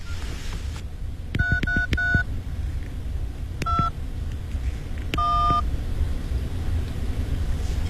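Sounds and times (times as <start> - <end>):
low steady rumble: 0.0 - 7.8
telephone keypad tones beeping: 1.4 - 2.3, 3.6 - 3.9, 5.2 - 5.6.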